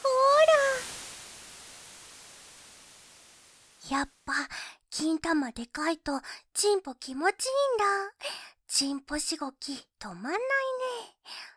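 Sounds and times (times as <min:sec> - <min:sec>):
steady faint white noise hiss: 0:00.0 - 0:04.5
speech: 0:03.9 - 0:11.5.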